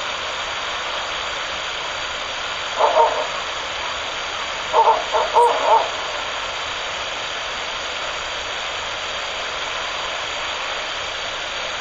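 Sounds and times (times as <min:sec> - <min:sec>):
steady hiss: 0:00.0 - 0:11.7
male and female Ural owl hooting: 0:02.8 - 0:03.6, 0:04.7 - 0:06.3.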